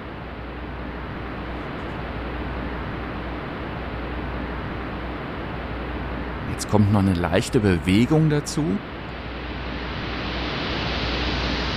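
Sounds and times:
steady pink noise hiss: 0.0s - 11.7s
speech: 6.6s - 8.9s.

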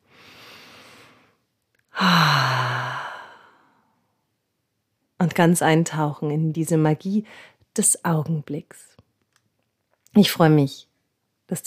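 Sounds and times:
single long deep breath drawn in: 0.0s - 4.0s
speech: 5.3s - 8.9s, 10.2s - 10.9s, 11.5s - 11.6s.

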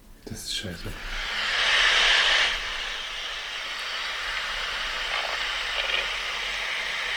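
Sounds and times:
speech: 0.3s - 1.3s
white pelican hissing: 0.9s - 7.1s.

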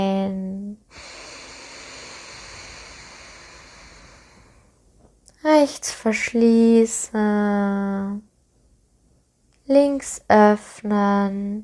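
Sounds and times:
slow exhale through the right nostril during alternate nostril breathing: 0.9s - 4.8s
speech: 5.6s - 8.3s, 9.7s - 11.6s.

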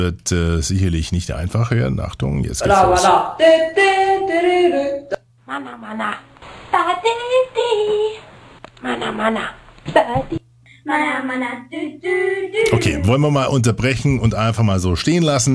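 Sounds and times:
speech: 0.0s - 8.2s, 8.8s - 15.5s
faint steady hum: 0.0s - 15.5s
amateur consumers singing an advertising jingle: 2.7s - 5.2s.

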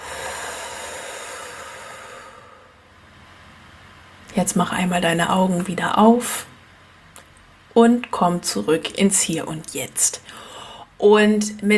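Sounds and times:
deep breath in and out during a relaxation exercise: 0.0s - 2.9s, 10.2s - 11.0s
speech: 4.4s - 6.5s, 7.8s - 11.7s.

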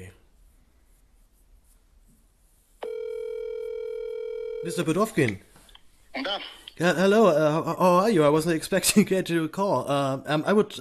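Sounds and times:
phone line tone while dialing out: 2.8s - 4.9s
speech: 4.6s - 5.5s, 6.2s - 10.7s.

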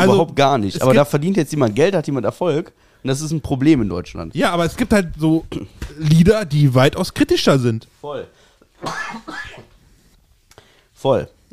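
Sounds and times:
speech: 0.0s - 9.7s, 11.0s - 11.5s
harsh breathy coughs: 8.8s - 9.7s
quieter throat clearing: 8.8s - 9.7s.

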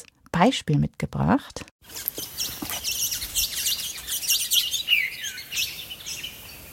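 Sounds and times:
speech: 0.0s - 2.6s
birds chirping at a eucalyptus waterhole: 1.9s - 6.7s.

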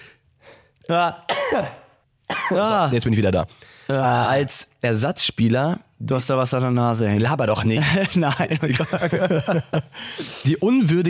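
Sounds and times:
speech: 0.9s - 1.8s, 2.5s - 11.0s
person sneezing: 1.3s - 2.6s
laughter: 7.8s - 10.0s.

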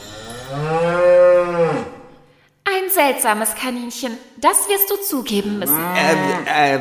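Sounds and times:
cow mooing: 0.0s - 2.2s, 5.6s - 6.6s
speech: 0.5s - 0.7s, 3.1s - 6.8s.

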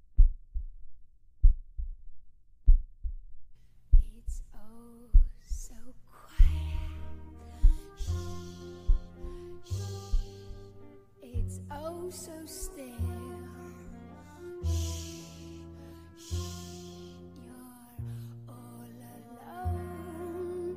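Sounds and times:
heartbeat: 0.0s - 10.7s, 11.4s - 11.8s
swelling music: 6.6s - 20.7s.

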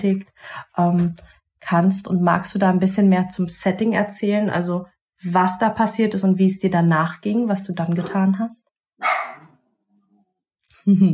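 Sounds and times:
speech: 0.0s - 9.2s, 10.8s - 11.1s
dog barking: 9.0s - 9.6s.

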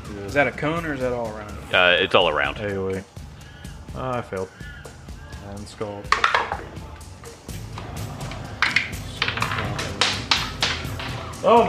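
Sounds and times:
speech: 0.1s - 3.2s, 3.9s - 4.8s, 5.4s - 6.9s, 11.4s - 11.6s
dice clattering and tumbling across a hard tabletop: 8.6s - 11.3s.

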